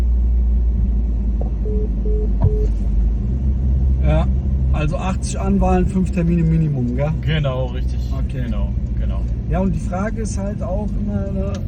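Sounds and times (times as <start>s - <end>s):
car interior engine rumble: 0.0s - 11.6s
faint tonal beeps: 1.6s - 2.7s
speech: 4.8s - 11.6s.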